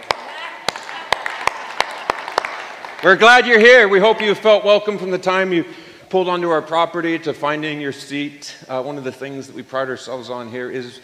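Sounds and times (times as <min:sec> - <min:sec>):
crowd clapping slowly in unison: 0:00.0 - 0:04.4
speech: 0:03.0 - 0:11.0.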